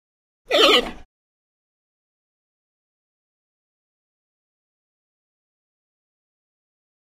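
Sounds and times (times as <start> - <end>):
panda bleating: 0.5 - 1.0.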